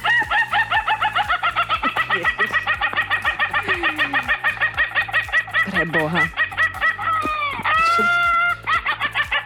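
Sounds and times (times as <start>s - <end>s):
Ayam Ketawa rooster laughing crow: 0.0s - 9.4s.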